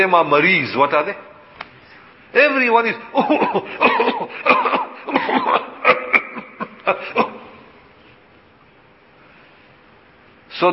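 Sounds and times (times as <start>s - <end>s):
speech: 0.0s - 1.3s, 2.3s - 6.2s
people coughing in a mosque: 3.2s - 7.7s.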